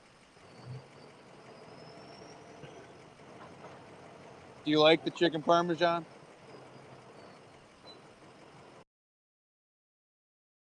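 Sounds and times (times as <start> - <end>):
diesel truck engine idling: 0.0 - 8.8
speech: 4.6 - 6.2.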